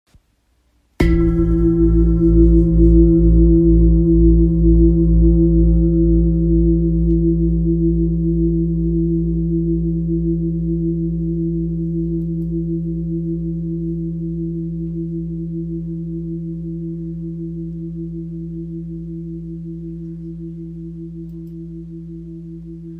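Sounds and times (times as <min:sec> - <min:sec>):
low singing bowl tone in A sharp, flower of life bowl: 0:01.0 - 0:22.9.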